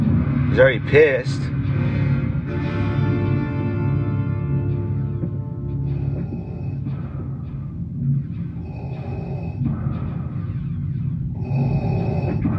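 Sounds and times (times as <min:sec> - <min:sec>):
steady low rumble: 0:00.0 - 0:12.5
speech: 0:00.5 - 0:01.9
heavy mechanical respirator breathing of a film character: 0:05.6 - 0:10.4, 0:11.2 - 0:12.5.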